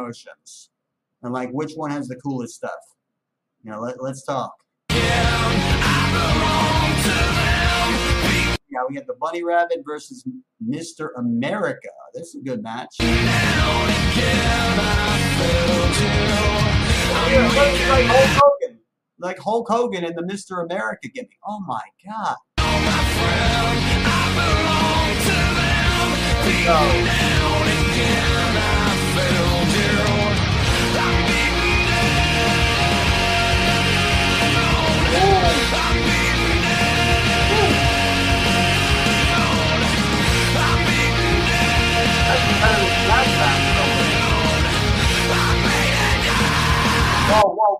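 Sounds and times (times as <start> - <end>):
speech: 0.0 - 3.0, 3.6 - 8.0, 8.8 - 18.5, 19.2 - 22.5, 26.4 - 30.1, 47.3 - 47.7
recorded rock song with distorted guitars and pounding drums: 4.9 - 8.6, 13.0 - 18.4, 22.6 - 47.4
rock singer screaming hoarsely: 17.0 - 18.4, 33.2 - 36.1, 36.9 - 39.5.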